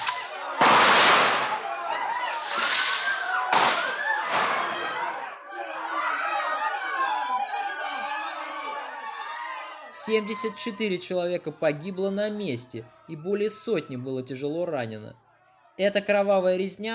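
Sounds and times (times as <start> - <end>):
arquebus gunshots in an irregular volley: 0.0 - 4.8
agitated crowd voices and shouting: 0.0 - 14.6, 15.2 - 15.8
speech: 10.1 - 15.2, 15.8 - 16.9.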